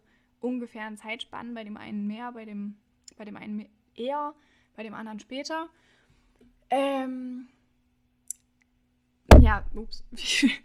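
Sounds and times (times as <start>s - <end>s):
speech: 0.4s - 6.0s, 6.7s - 7.6s, 9.4s - 10.6s
thump of something knocking against the microphone: 9.3s - 10.0s.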